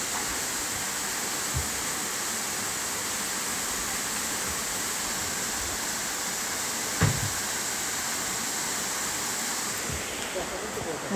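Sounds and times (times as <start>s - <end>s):
waterfall on Mount Takao in Japan rushing: 0.0s - 11.1s
faint soft thump: 7.0s - 7.4s.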